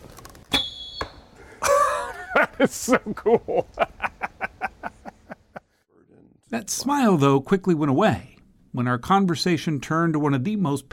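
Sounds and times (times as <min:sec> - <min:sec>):
whistling arrowhead flying through the air: 0:00.5 - 0:01.3
laughter: 0:01.5 - 0:05.7
speech: 0:02.6 - 0:04.0, 0:06.5 - 0:10.9.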